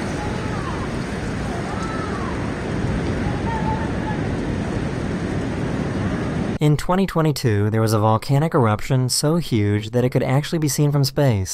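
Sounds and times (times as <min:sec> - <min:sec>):
heavy rain in a storm: 0:00.0 - 0:06.6
storm wind: 0:00.0 - 0:11.5
speech: 0:06.6 - 0:11.5.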